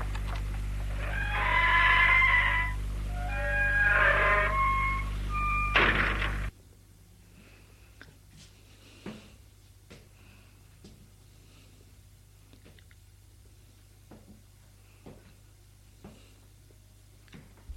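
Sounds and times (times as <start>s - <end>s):
low hum: 0.0s - 7.7s
door creaking open with squealing hinge groans: 0.8s - 6.5s.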